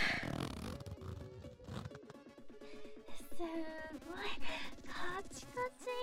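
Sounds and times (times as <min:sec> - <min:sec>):
zipper pulled open: 0:00.0 - 0:02.3
speech: 0:03.4 - 0:05.9.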